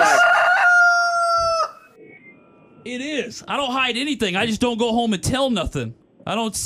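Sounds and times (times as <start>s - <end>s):
rooster crowing: 0.0s - 1.9s
speech: 2.8s - 6.6s.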